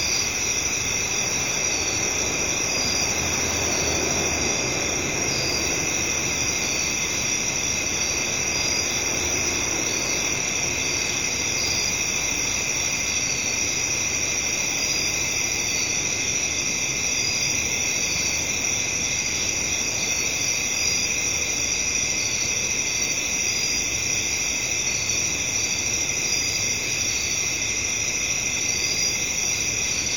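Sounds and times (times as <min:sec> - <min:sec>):
traffic noise: 0:00.0 - 0:20.2
cricket chorus in a residential area at night: 0:00.0 - 0:30.1.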